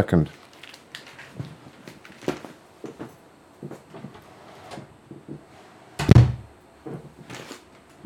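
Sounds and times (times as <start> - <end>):
speech: 0.0 - 0.4
office door swinging shut with a thud: 6.0 - 6.4.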